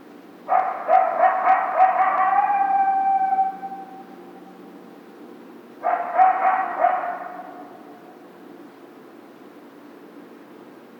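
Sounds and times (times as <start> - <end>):
coyote yipping barks: 0.5 - 4.4, 5.8 - 8.1.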